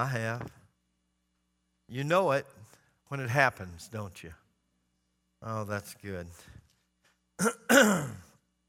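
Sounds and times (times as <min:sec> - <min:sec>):
speech: 0:00.0 - 0:00.6, 0:01.9 - 0:04.4, 0:05.4 - 0:06.6, 0:07.4 - 0:08.3
person clearing throat: 0:07.4 - 0:08.3.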